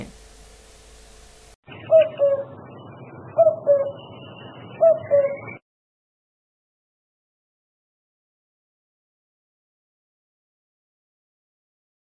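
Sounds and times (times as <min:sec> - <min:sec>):
common cuckoo: 0:01.7 - 0:05.6.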